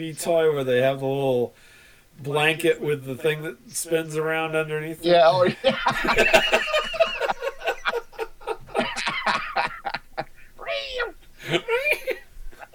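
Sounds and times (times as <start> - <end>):
speech: 0.0 - 6.8
laughter: 5.2 - 10.8, 11.4 - 12.7
cats meowing: 10.6 - 12.7.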